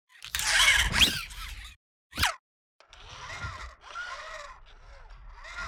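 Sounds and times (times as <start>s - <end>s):
small robot sound: 0.1s - 2.4s.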